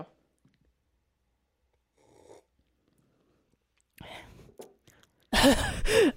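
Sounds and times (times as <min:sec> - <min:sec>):
mouth sipping noises from seltzer: 0:01.6 - 0:05.3
speech: 0:05.4 - 0:06.1.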